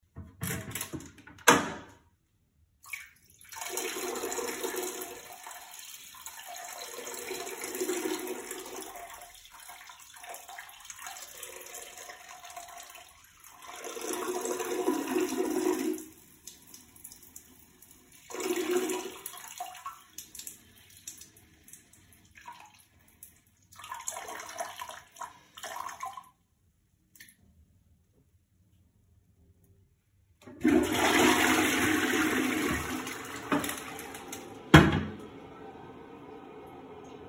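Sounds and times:
toilet flushing: 2.8s - 26.3s, 30.4s - 37.2s
peeing into a toilet: 30.5s - 35.2s.

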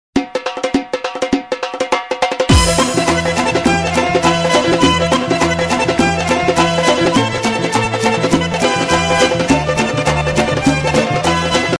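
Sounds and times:
Caucasian drums: 0.2s - 11.7s.

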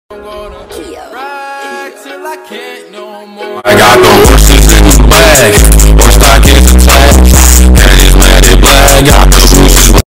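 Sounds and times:
bass-heavy music: 3.7s - 10.1s.

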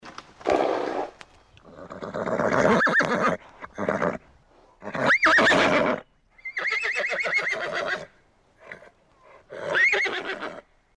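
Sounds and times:
horse neighing: 1.7s - 4.2s, 4.8s - 8.1s, 9.5s - 10.7s.

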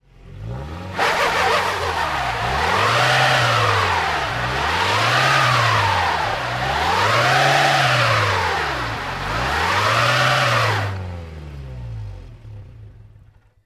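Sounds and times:
car skidding on ice: 0.9s - 11.1s.

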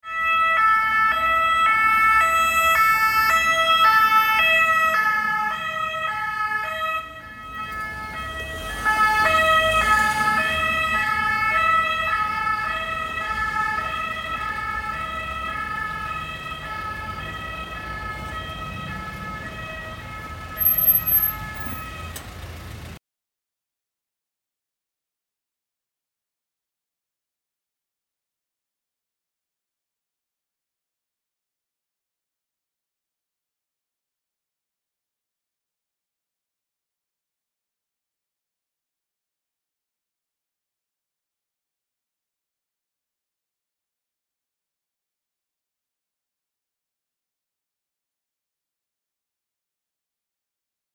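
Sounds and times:
police siren: 0.0s - 23.0s.

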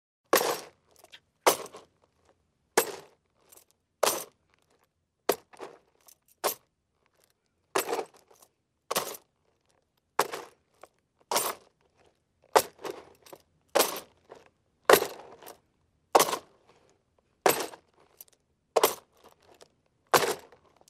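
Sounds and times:
footsteps on gravel with spurs: 0.3s - 2.2s, 2.8s - 10.6s, 11.3s - 15.6s, 16.2s - 16.9s, 17.5s - 20.8s.

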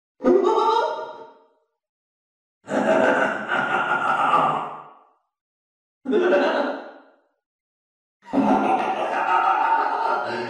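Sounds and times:
laughter with echo: 2.7s - 4.6s, 6.1s - 6.7s, 8.3s - 10.4s.

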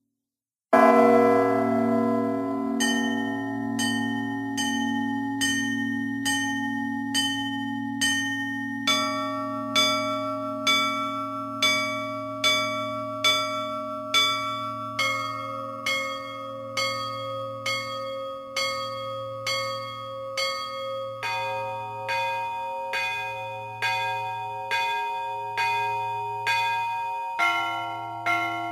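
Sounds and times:
bell ringing: 0.8s - 28.7s.

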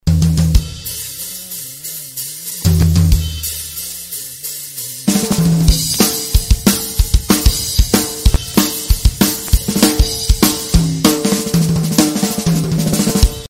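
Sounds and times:
drums: 0.0s - 13.4s.

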